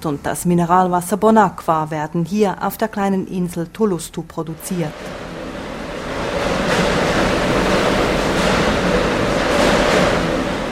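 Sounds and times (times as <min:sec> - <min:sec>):
speech: 0:00.0 - 0:05.2
bottling machine and conveyor belt running: 0:04.5 - 0:10.6.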